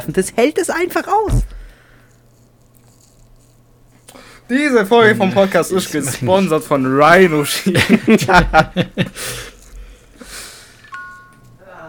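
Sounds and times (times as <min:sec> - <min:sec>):
speech: 0:00.0 - 0:01.6, 0:04.5 - 0:09.5
bursts of laughter: 0:07.5 - 0:09.2
Apple Watch electronic chime: 0:10.9 - 0:11.6.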